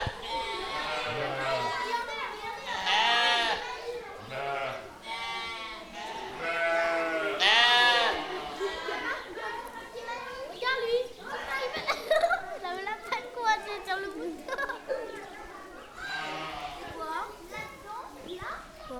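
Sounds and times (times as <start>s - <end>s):
children laughing: 0.0s - 18.9s
sheep bleating: 0.2s - 1.9s, 2.6s - 9.0s, 16.0s - 17.0s.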